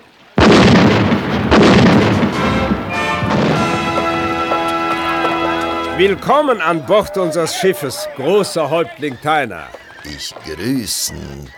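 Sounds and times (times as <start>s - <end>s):
ship's cannons firing a salute: 0.4s - 6.5s
laughter: 3.5s - 11.5s
speech: 6.0s - 11.5s.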